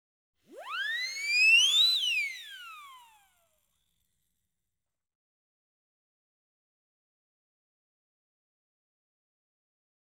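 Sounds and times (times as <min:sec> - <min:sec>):
siren with reverb: 0:00.5 - 0:03.3.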